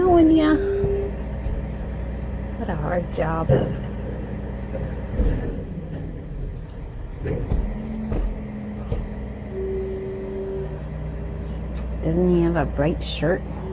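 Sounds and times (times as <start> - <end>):
clanks and thumps: 0.0 - 2.2, 2.9 - 10.9
big green garbage truck rumbling while collecting garbage: 0.0 - 13.7
garbage truck hydraulic lift whine: 0.0 - 13.7
speech: 2.9 - 3.8, 7.2 - 7.6, 12.0 - 13.6.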